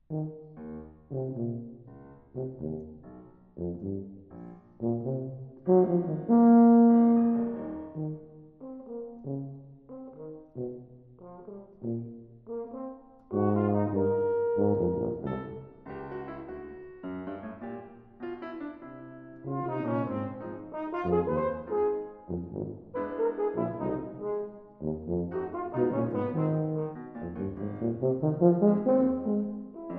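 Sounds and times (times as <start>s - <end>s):
jazz-style suite for horn, tuba and piano: 0.0s - 29.9s.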